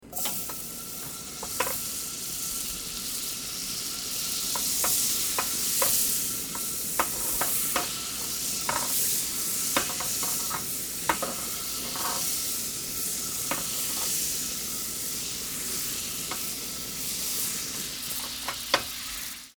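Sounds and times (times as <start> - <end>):
butter cooking: 0.0 - 19.5.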